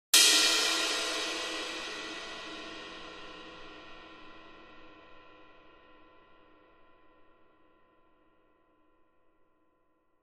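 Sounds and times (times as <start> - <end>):
medium cymbal single hit: 0.2 - 5.0.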